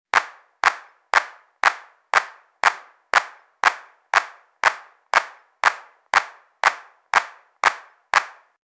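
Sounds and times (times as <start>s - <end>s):
clapping at a performance: 0.1s - 8.6s.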